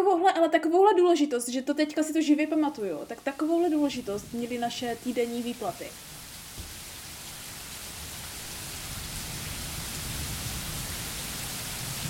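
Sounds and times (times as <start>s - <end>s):
speech: 0.0s - 6.1s
dense rain hissing during a storm: 2.1s - 12.0s.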